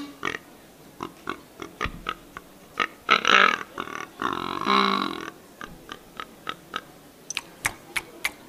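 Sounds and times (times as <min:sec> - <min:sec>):
wild boar grunts imitated on a hunting lure call: 0:00.0 - 0:06.9.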